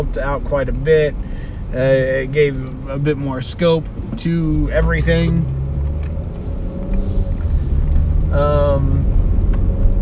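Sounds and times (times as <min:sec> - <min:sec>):
speech: 0:00.0 - 0:05.6, 0:08.3 - 0:09.0
low road rumble from inside a moving car: 0:00.0 - 0:10.0.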